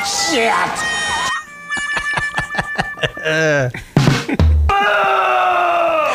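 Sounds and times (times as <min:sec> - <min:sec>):
speech: 0:00.3 - 0:01.4, 0:02.7 - 0:05.6
laughter: 0:01.7 - 0:04.5
sexual heavy breathing and moaning sound effect on a radio show: 0:02.9 - 0:04.0, 0:04.8 - 0:06.1.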